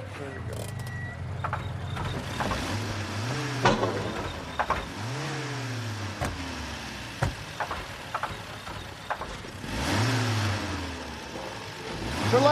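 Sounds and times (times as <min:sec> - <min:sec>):
car engine with an overheating starter idling and revving: 0:00.2 - 0:12.5
sharp clicks and knocks: 0:00.5 - 0:02.9, 0:03.6 - 0:05.1, 0:07.2 - 0:09.6.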